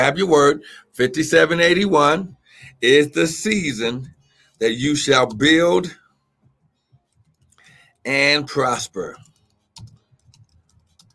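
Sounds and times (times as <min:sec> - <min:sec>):
speech: 0:00.0 - 0:06.0, 0:08.0 - 0:09.9
keyboard typing: 0:07.0 - 0:11.1.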